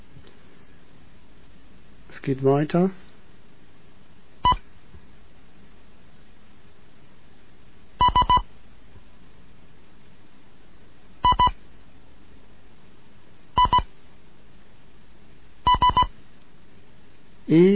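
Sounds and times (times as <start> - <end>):
faint hum: 0.0 - 17.7
speech: 2.2 - 3.0, 17.5 - 17.7
high Morse code beeps: 8.0 - 8.4, 11.2 - 11.6, 13.6 - 13.9, 15.7 - 16.1.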